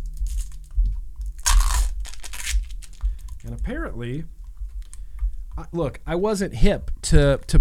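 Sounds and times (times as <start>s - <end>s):
plastic package of pickles being torn open: 0.0s - 0.7s, 1.3s - 3.6s
plastic package rustling: 0.0s - 5.2s
speech: 3.5s - 4.4s, 5.6s - 7.5s.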